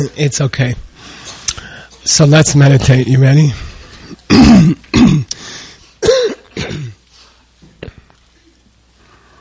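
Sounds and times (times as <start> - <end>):
speech: 0.0 - 0.9, 2.0 - 4.8
person clearing throat: 4.3 - 5.4, 6.0 - 7.0.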